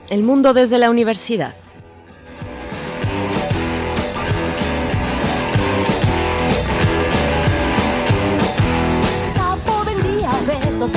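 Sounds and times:
upbeat instrumental song intro with driving beat and layered instruments: 0.0 - 10.9
speech: 0.1 - 1.6.

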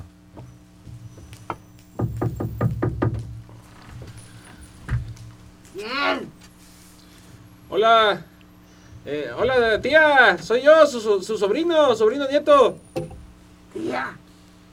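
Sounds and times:
knocking on an apartment door at the top of a building's stairs: 0.3 - 3.5
speech: 7.8 - 8.3, 9.0 - 13.1.

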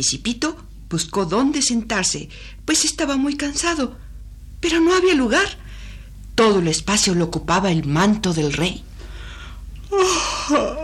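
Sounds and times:
speech: 0.0 - 5.8, 6.4 - 8.9, 9.9 - 10.8
drawn-out breathy yawn: 9.9 - 10.8.

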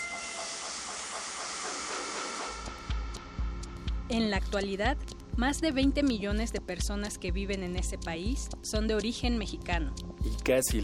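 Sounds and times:
steam train hissing along rails: 0.0 - 3.0
speech: 4.1 - 10.8.

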